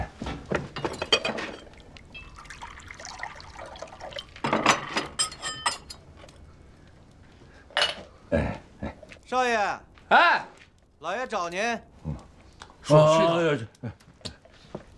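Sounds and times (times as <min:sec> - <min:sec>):
cups and dishes clinking: 0:00.6 - 0:06.0, 0:07.7 - 0:08.1
water poured in short splashing bursts: 0:01.1 - 0:06.2
speech: 0:09.3 - 0:11.9, 0:12.9 - 0:14.0.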